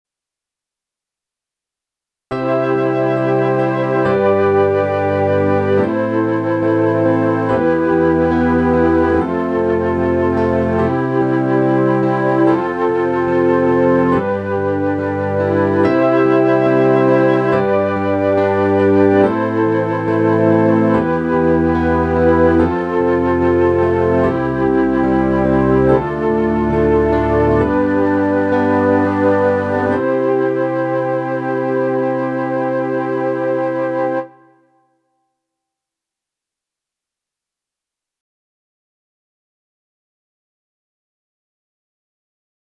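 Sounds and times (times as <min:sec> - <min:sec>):
Nord Grand silver flutes sound: 0:02.3 - 0:34.7.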